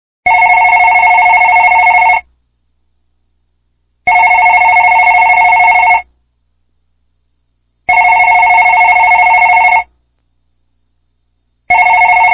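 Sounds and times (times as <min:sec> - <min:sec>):
phone ringing: 0:00.3 - 0:02.3, 0:04.1 - 0:06.1, 0:07.9 - 0:09.9, 0:11.7 - 0:12.3.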